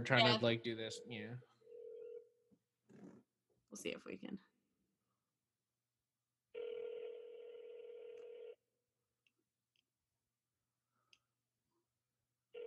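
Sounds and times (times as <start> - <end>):
speech: 0.0 - 1.5, 3.7 - 4.5
telephone ringback tone: 1.6 - 2.3, 6.6 - 8.6.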